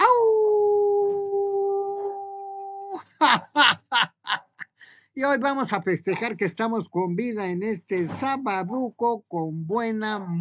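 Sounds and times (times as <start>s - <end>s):
person imitating a howl: 0.0s - 3.0s
laughter: 3.0s - 4.8s
speech: 3.2s - 3.8s, 5.2s - 10.3s.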